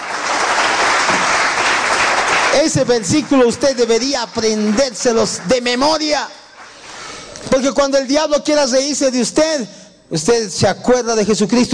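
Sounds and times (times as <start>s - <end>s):
crowd applauding: 0.0s - 7.2s
speech: 2.6s - 6.4s, 7.5s - 11.7s.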